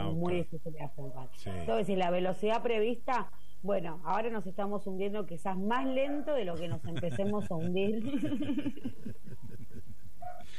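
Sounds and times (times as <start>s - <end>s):
speech: 0.2s - 9.5s
male dog left alone barking: 6.0s - 6.4s
laughter: 6.6s - 10.1s.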